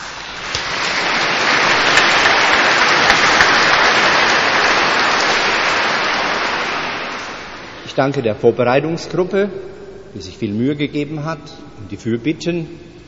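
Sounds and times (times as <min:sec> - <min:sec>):
large audience applauding at a church service: 0:00.0 - 0:07.8
speech: 0:08.0 - 0:13.0.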